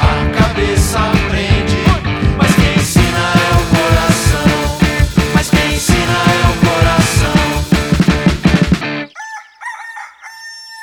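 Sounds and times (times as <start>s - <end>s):
dense rhythmic sound: 0.0s - 9.0s
rooster crowing at dawn: 9.1s - 10.8s.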